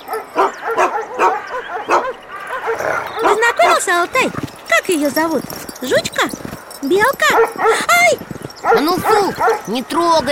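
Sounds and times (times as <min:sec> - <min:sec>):
large chained guard dog barking by its kennel: 0:00.0 - 0:04.0, 0:07.2 - 0:08.0, 0:08.6 - 0:09.8
speech: 0:03.9 - 0:10.3.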